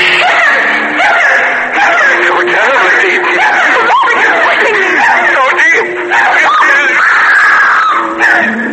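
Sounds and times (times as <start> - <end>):
laughter: 0.1 - 7.0
woman screaming: 0.2 - 1.9, 6.1 - 8.5.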